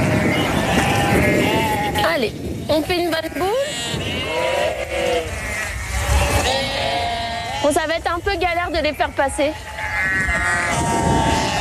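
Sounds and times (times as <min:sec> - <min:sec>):
flock of sheep bleating together: 0:00.0 - 0:08.1, 0:08.7 - 0:11.5
speech: 0:02.2 - 0:04.0, 0:07.6 - 0:09.7.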